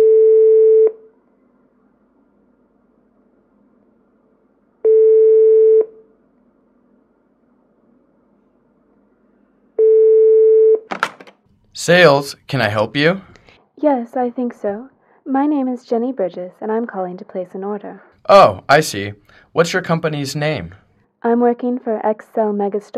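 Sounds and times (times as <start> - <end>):
telephone ringing tone buzzes on the line: 0.0 - 1.0, 4.8 - 6.0, 9.8 - 10.8
speech: 11.9 - 22.9.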